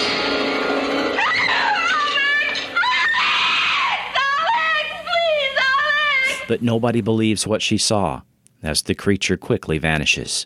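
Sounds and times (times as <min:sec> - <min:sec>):
woman screaming in fright: 0:01.1 - 0:06.3
speech: 0:06.5 - 0:10.4.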